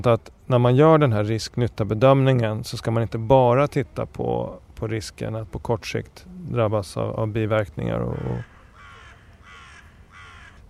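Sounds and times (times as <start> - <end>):
speech: 0.0 - 8.5
raven croaking: 7.8 - 10.6.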